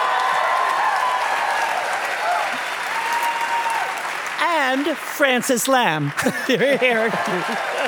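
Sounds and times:
faint cheers: 0.0 - 4.1
large audience applause: 0.0 - 7.8
speech: 4.7 - 7.8
laughter: 6.0 - 7.8.

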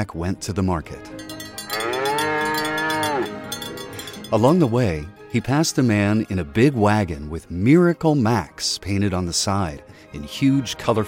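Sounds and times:
speech: 0.0 - 2.0, 4.3 - 11.0
cow mooing loud and close: 1.6 - 3.6.

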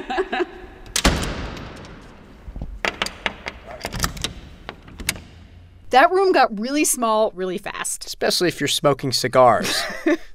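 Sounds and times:
door latches or bolts clicking and clunking in a small room: 0.6 - 5.9
heavy door slamming in a small room: 0.6 - 6.0
speech: 5.9 - 10.3.

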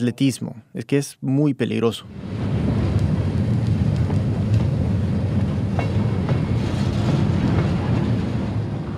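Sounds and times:
speech: 0.0 - 2.4
freight train standing and running on the tracks: 2.0 - 8.9.

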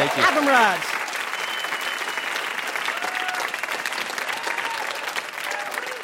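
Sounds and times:
sustained applause from a large audience: 0.0 - 6.0
speech: 0.4 - 0.9
faint cheers or whoops: 1.3 - 6.0.

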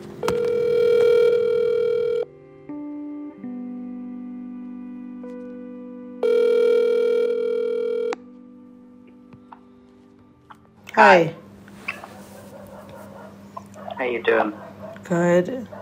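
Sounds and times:
outgoing phone call ringback tone: 0.2 - 2.3, 6.2 - 8.2
speech: 11.0 - 11.4, 14.2 - 15.8.

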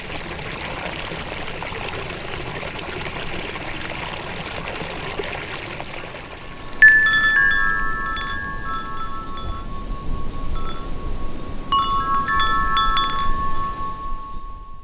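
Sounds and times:
water rushing in a creek near an apartment: 0.0 - 14.8
wind chimes at a house ringing: 6.5 - 14.8.

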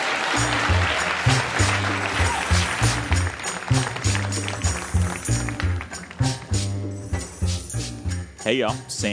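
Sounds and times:
live audience clapping: 0.0 - 6.9
rhythmic bass-heavy music bed: 0.0 - 9.1
speech: 8.5 - 9.1.

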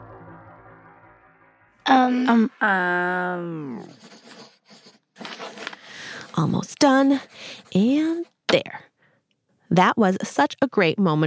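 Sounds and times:
speech: 1.9 - 4.4, 6.4 - 8.9, 9.7 - 11.2
pencil scratching across paper: 3.7 - 8.5.

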